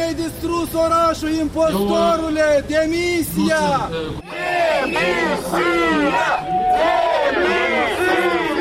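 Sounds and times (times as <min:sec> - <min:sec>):
speech: 0:00.2 - 0:08.4
large crowd of protesters chanting and booing: 0:04.2 - 0:08.6.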